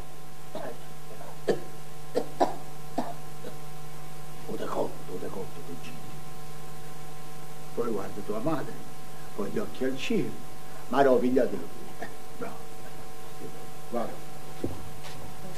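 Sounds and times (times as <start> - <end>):
steady electrical hum: 0.0 - 15.5
person coughing: 0.6 - 3.6, 11.9 - 13.0
speech: 8.3 - 8.8, 9.4 - 11.8, 13.9 - 14.2.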